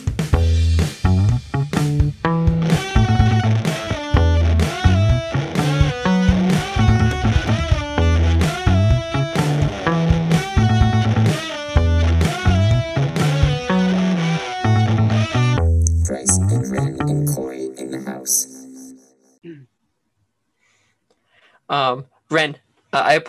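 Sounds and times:
steady pulsing beat: 0.0s - 17.4s
distorted electric guitar riff: 0.0s - 18.8s
speech: 21.9s - 23.2s.

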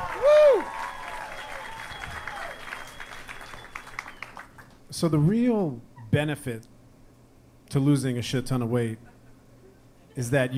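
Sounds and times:
person whooping: 0.0s - 2.7s
audience applause at a stand-up comedy set: 0.0s - 4.8s
speech: 5.0s - 6.7s, 7.7s - 9.1s, 10.2s - 10.5s.

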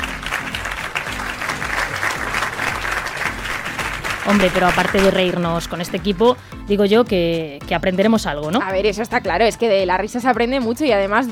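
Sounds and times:
audience applause: 0.0s - 5.7s
speech: 4.3s - 11.3s.

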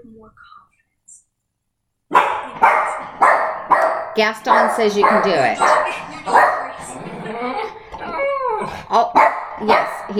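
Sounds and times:
speech: 0.0s - 0.8s, 4.2s - 7.5s, 8.7s - 10.1s
dog giving short yelping barks: 2.1s - 6.7s, 9.2s - 10.0s
dog whimpering: 6.8s - 8.8s.

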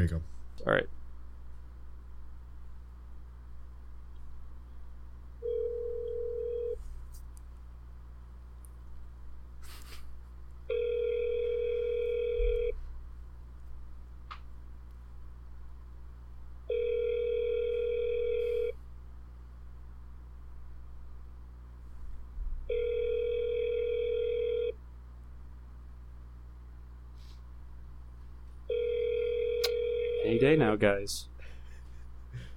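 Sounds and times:
speech: 0.0s - 1.0s, 30.8s - 31.3s
telephone ringback tone: 5.4s - 6.8s, 10.7s - 12.8s, 16.7s - 18.7s, 22.7s - 24.8s, 28.7s - 30.5s.

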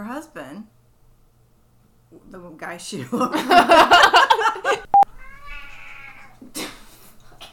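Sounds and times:
speech: 0.1s - 0.8s, 2.2s - 4.8s
laughter: 3.1s - 4.9s
cat meowing: 5.0s - 6.4s.

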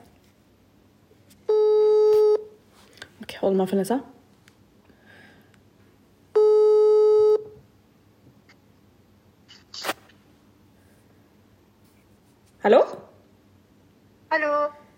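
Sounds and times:
buzzy phone ringing tone over a speakerphone: 1.5s - 2.5s, 6.4s - 7.6s
speech: 3.4s - 4.2s.

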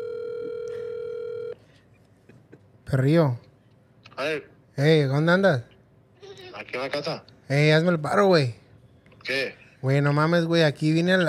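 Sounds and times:
electronic phone ringing tone on speakerphone: 0.0s - 1.6s
faint room noise: 0.0s - 11.2s
speech: 2.9s - 3.4s, 4.2s - 5.7s, 6.6s - 8.6s, 9.2s - 11.2s.

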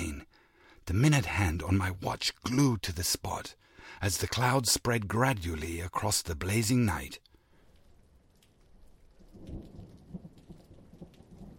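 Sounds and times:
speech: 0.9s - 7.3s
heavy mountain rain over a tiny village lane at night: 3.6s - 11.5s
deep rumble of thunder: 9.0s - 11.5s.

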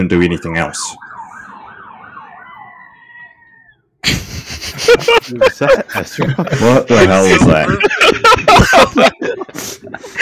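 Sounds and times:
speech: 0.0s - 1.1s, 4.9s - 10.1s
emergency vehicle siren wailing outside: 0.0s - 4.0s
laughter: 4.0s - 10.1s.

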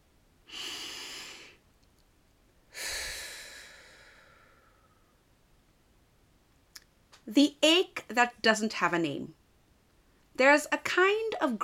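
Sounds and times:
slow deep breathing during a guided breathing exercise: 0.5s - 1.6s, 2.7s - 5.3s
speech: 7.3s - 9.4s, 10.4s - 11.6s.

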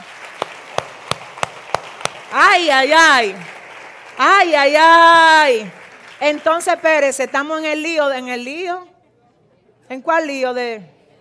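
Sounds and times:
hands clapping in steady unison: 0.0s - 6.7s
speech: 2.3s - 3.5s, 4.2s - 8.9s, 9.9s - 11.0s.

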